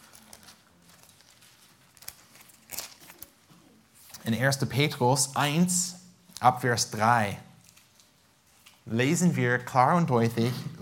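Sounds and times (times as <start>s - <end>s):
Bible pages flipping: 0.0s - 4.6s, 7.6s - 8.9s
speech: 4.2s - 7.5s, 8.9s - 10.8s.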